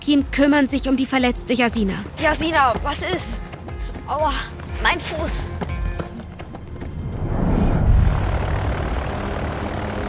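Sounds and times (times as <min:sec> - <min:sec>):
speech: 0:00.1 - 0:03.5, 0:04.1 - 0:05.7
propeller engine starting up in a hangar: 0:07.8 - 0:10.0.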